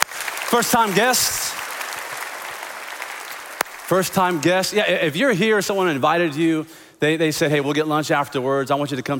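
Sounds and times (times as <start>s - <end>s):
audience clapping in a large room: 0.0s - 5.1s
speech: 0.5s - 1.5s, 3.9s - 9.1s.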